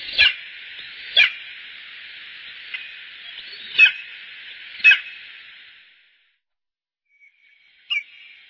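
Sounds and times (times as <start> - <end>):
Bonelli's eagle giving sharp yelping calls: 0.0 - 0.5, 3.7 - 4.2, 4.8 - 5.2
hiss: 0.0 - 6.2.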